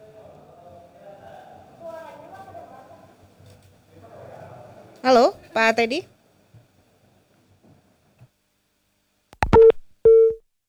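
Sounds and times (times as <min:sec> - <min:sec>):
speech: 0:05.0 - 0:06.1
phone line clicking and crackling: 0:09.4 - 0:10.4
telephone busy tone after a dropped call: 0:09.4 - 0:10.4.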